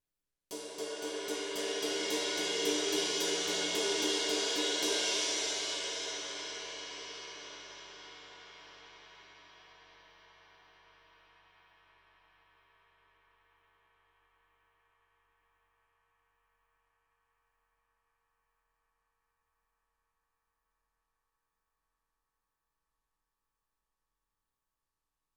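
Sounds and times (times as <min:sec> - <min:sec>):
ride cymbal build: 0:00.5 - 0:07.7.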